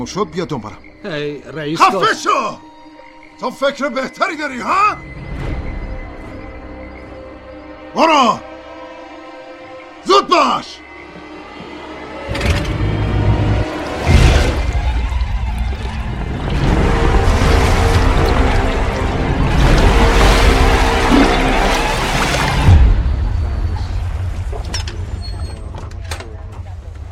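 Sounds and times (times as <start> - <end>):
speech: 0.0 - 2.7, 3.4 - 5.6, 7.9 - 8.5, 10.1 - 10.8
water rushing into a boat being deliberately sunk: 13.0 - 26.0.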